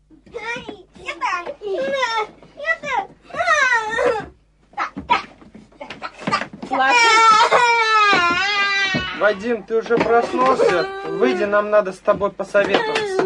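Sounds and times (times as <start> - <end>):
young children arguing over a ball at home: 0.3 - 11.6
young children crying and wailing: 1.6 - 11.8, 12.6 - 13.2
speech: 9.3 - 13.2.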